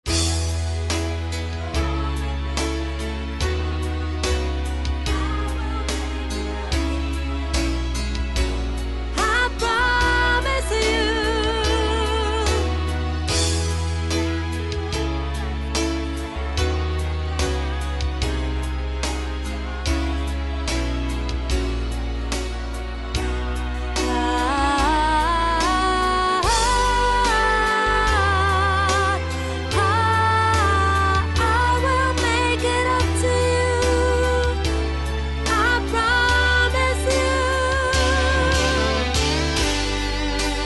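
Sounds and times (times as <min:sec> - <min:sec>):
soprano singing: 0:00.1 - 0:40.6.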